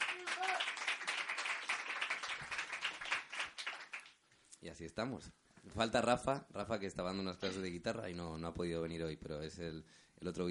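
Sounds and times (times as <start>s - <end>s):
crowd applauding a bass player: 0.0s - 4.2s
speech: 4.6s - 10.4s.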